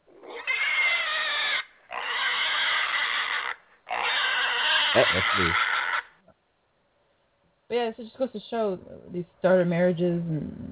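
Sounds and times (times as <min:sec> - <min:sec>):
pig squealing: 0:00.0 - 0:06.2
speech: 0:05.0 - 0:05.7, 0:07.7 - 0:10.7.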